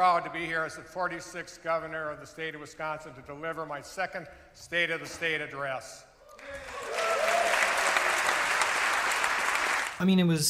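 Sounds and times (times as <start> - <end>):
speech: 0.0 - 6.8, 10.0 - 10.4
large audience applause at a state address: 6.4 - 10.0.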